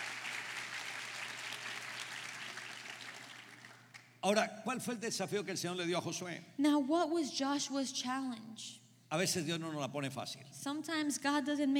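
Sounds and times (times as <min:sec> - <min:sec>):
large crowd clapping: 0:00.0 - 0:04.2
speech: 0:04.2 - 0:11.7.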